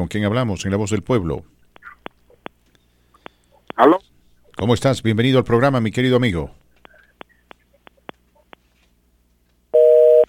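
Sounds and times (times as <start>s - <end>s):
speech: 0.0s - 1.5s, 3.8s - 6.6s
two-note telephone busy tone after a dropped call: 9.8s - 10.2s.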